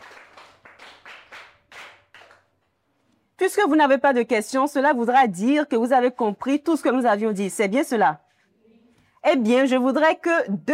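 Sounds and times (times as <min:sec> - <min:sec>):
group of people clapping in unison: 0:00.0 - 0:02.7
speech: 0:03.4 - 0:08.2, 0:09.3 - 0:10.7.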